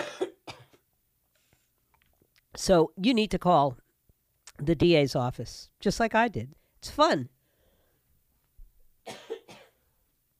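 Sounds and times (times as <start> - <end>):
person coughing forcefully: 0.0 - 0.8, 9.1 - 9.8
speech: 2.6 - 3.8, 4.6 - 7.4.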